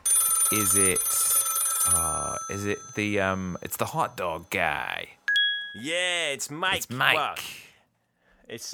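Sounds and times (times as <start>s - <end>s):
telephone ringing: 0.0s - 6.0s
speech: 0.5s - 5.2s, 5.8s - 7.6s, 8.5s - 8.7s.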